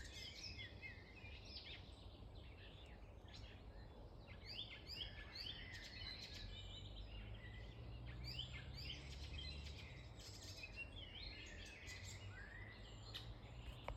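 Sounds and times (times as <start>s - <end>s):
Icterine warbler Hippolais icterina male singing in Latvia: 0.0s - 13.9s.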